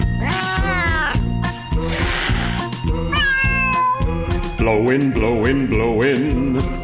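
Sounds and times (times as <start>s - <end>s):
cats meowing in a comic song about house cats: 0.2s - 1.3s, 1.9s - 4.2s
speech: 4.9s - 6.8s.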